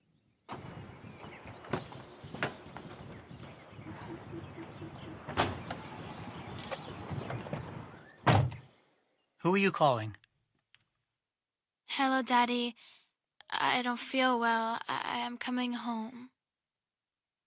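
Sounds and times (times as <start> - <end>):
thunks and rattles: 0.5 - 3.6, 5.2 - 6.0, 7.0 - 8.6
car door slamming shut: 7.3 - 8.7
speech: 9.4 - 10.2, 12.0 - 13.0, 13.6 - 16.3.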